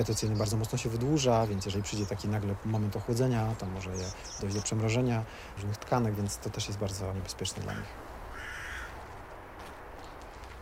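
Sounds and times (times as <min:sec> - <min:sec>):
speech: 0:00.0 - 0:08.1
faint steady noise: 0:00.0 - 0:10.6
rook calling as it flies overhead in late autumn: 0:07.6 - 0:09.3.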